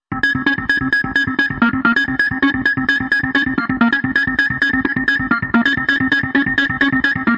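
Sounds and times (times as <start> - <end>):
dirty synth arpeggio: 0.1 - 7.3.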